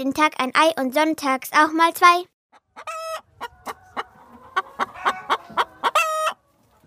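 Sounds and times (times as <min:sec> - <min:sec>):
speech: 0:00.0 - 0:03.5
hens clucking in a farmyard: 0:02.5 - 0:06.8.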